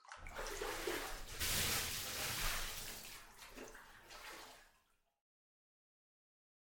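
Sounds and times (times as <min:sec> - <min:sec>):
water pouring and splashing while washing someone's body: 0:00.0 - 0:05.0.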